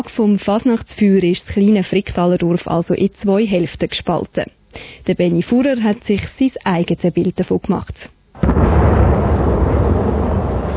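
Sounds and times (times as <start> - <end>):
speech: 0.0 - 8.8
ceremonial Böller cannon shot on the Jura ridge: 8.4 - 10.7.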